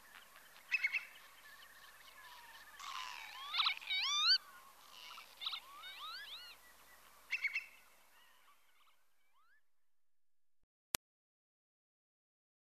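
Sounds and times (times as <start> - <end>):
northern lapwing wavy wheezy calls with rasping bursts: 2.3 - 6.6.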